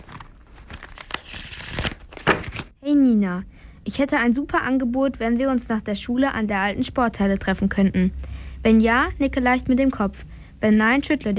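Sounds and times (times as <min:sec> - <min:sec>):
paper being unrolled: 0:00.0 - 0:02.7
speech: 0:02.8 - 0:11.3.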